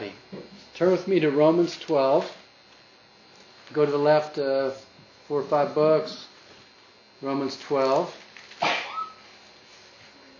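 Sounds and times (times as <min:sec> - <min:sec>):
speech: 0:00.8 - 0:02.4, 0:03.7 - 0:06.3, 0:07.2 - 0:08.2
person sneezing: 0:08.6 - 0:09.2.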